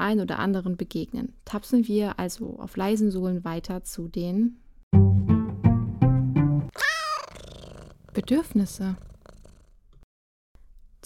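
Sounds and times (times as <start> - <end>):
speech: 0.1 - 5.3, 8.2 - 9.1
cat purring: 6.7 - 10.1.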